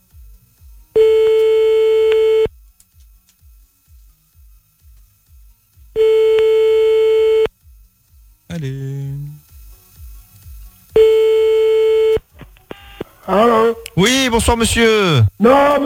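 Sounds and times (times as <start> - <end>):
faint low clicking pulses: 0.0 - 15.8
telephone busy signal while calling a number back: 1.0 - 2.5, 6.0 - 7.5, 11.0 - 13.1
speech: 14.3 - 15.8.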